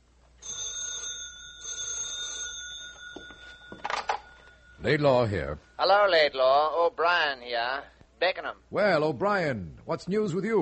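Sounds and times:
telephone bell ringing in a laboratory: 0.4s - 6.1s
speech: 4.8s - 10.6s.

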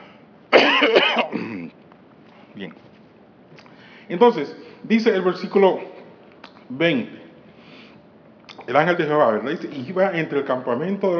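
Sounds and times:
loud harsh cough: 0.5s - 1.7s
raspy throat clearing: 0.5s - 1.8s
speech: 0.8s - 1.2s, 4.1s - 5.9s, 6.7s - 7.2s, 8.7s - 11.1s.

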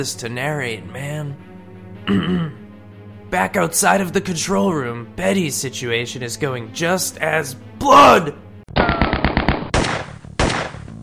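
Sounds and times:
speech: 0.0s - 1.5s, 2.1s - 2.6s, 3.3s - 8.4s
rapid gunfire burst: 8.8s - 10.8s.

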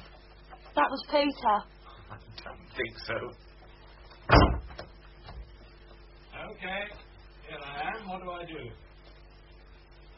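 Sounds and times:
speech: 0.8s - 3.4s, 6.6s - 8.9s
door shutting thud: 4.2s - 4.9s.

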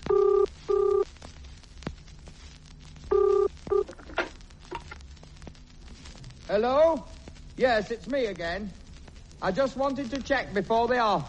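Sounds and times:
telephone ringing with loud double electronic ring: 0.0s - 1.0s, 3.1s - 4.0s
speech: 6.5s - 8.8s, 9.4s - 11.2s.

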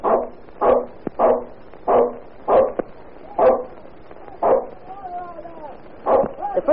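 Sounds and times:
dog barking at smoke from a tenement house fire: 0.0s - 2.8s, 3.4s - 3.8s, 4.4s - 4.8s, 6.0s - 6.4s.

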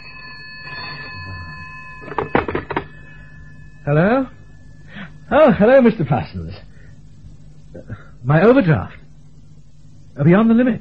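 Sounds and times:
telephone ringing: 0.0s - 6.0s
speech: 3.9s - 4.4s, 5.3s - 6.7s, 7.8s - 9.0s, 10.2s - 10.7s.

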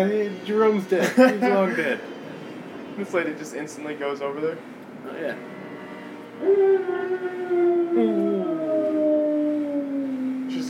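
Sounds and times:
speech: 0.0s - 2.1s, 3.0s - 5.6s, 6.4s - 9.0s
laughter: 1.0s - 2.0s
dog howling: 6.4s - 10.6s.

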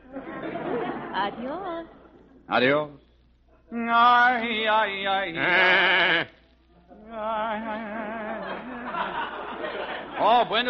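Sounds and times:
laughter: 0.0s - 2.5s, 7.8s - 10.6s
speech: 1.2s - 3.0s, 3.7s - 6.4s, 10.2s - 10.6s
imported sheep bleating while being brought in: 5.3s - 6.4s.

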